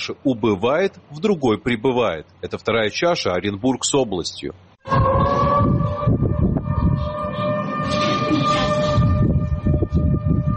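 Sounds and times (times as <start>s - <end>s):
speech: 0.0s - 5.3s
rough rumbling noise: 0.0s - 10.5s
emergency flood evacuation warning siren wailing in Orenburg: 4.8s - 10.5s.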